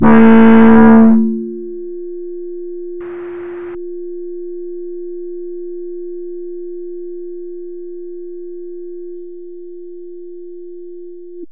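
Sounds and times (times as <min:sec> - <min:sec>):
experimental industrial music: 0:00.0 - 0:01.6.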